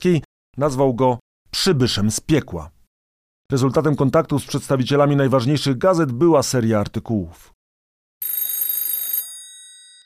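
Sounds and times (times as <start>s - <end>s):
speech: 0.0s - 2.8s, 3.5s - 7.6s
telephone bell ringing in a hotel room: 8.2s - 10.0s.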